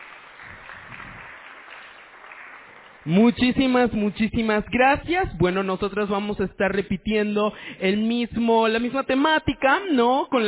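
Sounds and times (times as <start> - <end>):
audience applause: 0.0 - 3.2
speech: 3.0 - 10.4.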